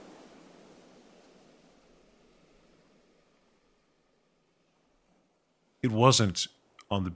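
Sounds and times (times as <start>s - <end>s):
waves crashing against rocks on shore: 0.0s - 3.2s
speech: 5.8s - 7.1s.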